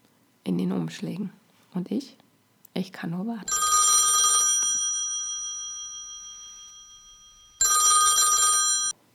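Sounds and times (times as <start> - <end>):
speech: 0.5 - 2.2, 2.8 - 3.6
telephone bell ringing: 3.5 - 9.0.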